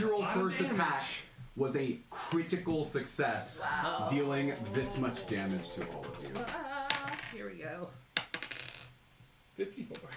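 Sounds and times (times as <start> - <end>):
speech: 0.4 - 8.0, 9.6 - 10.1
small dice rolling on a hard tabletop: 6.9 - 7.4, 8.2 - 9.0.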